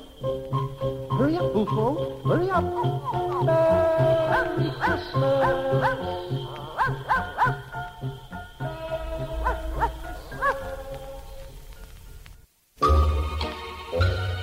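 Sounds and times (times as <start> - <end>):
tuneful musical backing: 0.0 - 14.4
speech: 1.2 - 7.6
dog barking in short yaps: 4.3 - 7.8, 9.2 - 11.0.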